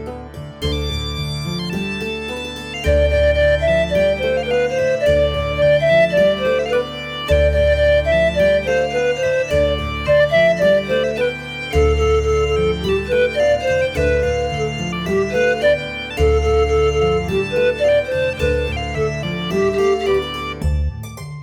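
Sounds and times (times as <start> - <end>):
pan flute melody without countermelody: 0.6 - 21.0.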